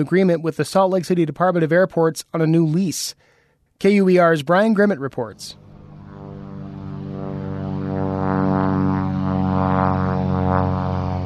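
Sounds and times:
speech: 0.0 - 5.6
small single-engine airplane taking off at a regional airport: 5.1 - 11.2.

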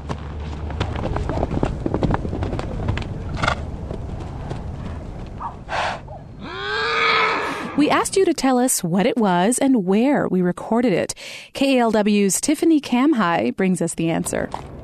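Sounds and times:
footsteps crunching through dry grass walking uphill at Horse Hill in Mill Valley California: 0.0 - 5.7
horse snorting in pasture: 5.4 - 8.0
horse whinnying in pasture: 5.7 - 8.0
speech: 7.8 - 14.8.

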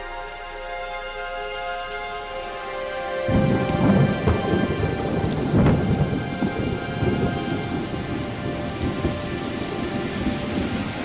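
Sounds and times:
heavy rain pouring down: 0.8 - 11.0
thunder rumbling with sharper cracks: 2.4 - 11.0.

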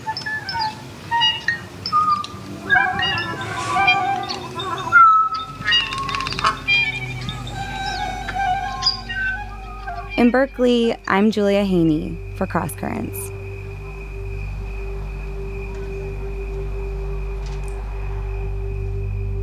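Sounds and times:
bird whistling and chirping: 0.0 - 11.2
sustained instrumental tones: 0.0 - 19.4
speech: 10.2 - 13.3.

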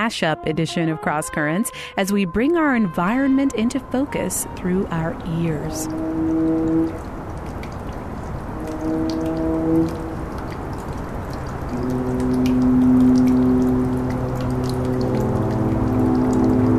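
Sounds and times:
long low droning foghorn tones: 0.0 - 16.7
speech: 0.1 - 6.4
dripping tap: 3.4 - 16.7.

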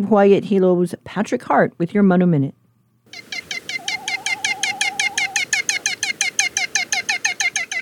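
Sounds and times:
speech: 0.0 - 3.2
great frigatebird calling: 3.1 - 7.8
low wavering whistle: 3.7 - 5.7.

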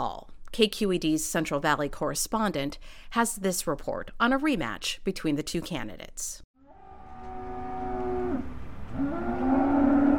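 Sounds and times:
speech: 0.0 - 6.5
cattle mooing at a livestock auction: 6.7 - 10.1.

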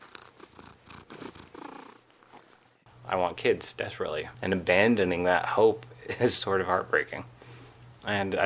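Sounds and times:
cat purring while being held: 0.0 - 2.8
speech: 3.1 - 7.4, 8.0 - 8.4.

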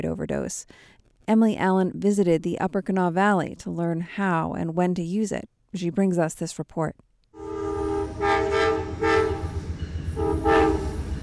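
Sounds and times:
speech: 0.0 - 7.1
train horn blaring a sustained chord-like tone: 7.4 - 11.2.

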